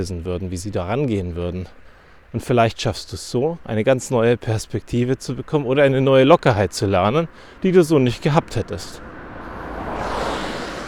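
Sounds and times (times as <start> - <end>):
speech: 0.0 - 9.1
road traffic rushing: 5.2 - 10.8
car passing: 5.8 - 10.8.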